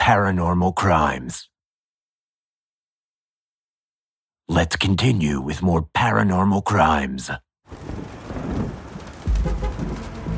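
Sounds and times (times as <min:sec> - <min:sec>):
speech: 0:00.0 - 0:01.5, 0:04.5 - 0:08.2
steady soft rain pattering: 0:07.7 - 0:10.3
deep low rumble: 0:08.4 - 0:10.3.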